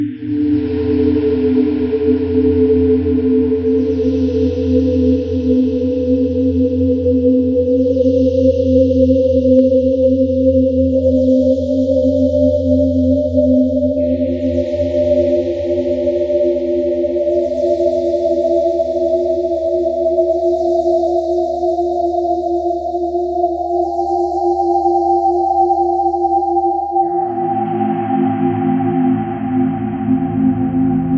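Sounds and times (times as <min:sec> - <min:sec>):
sine tones: 0:00.1 - 0:31.1.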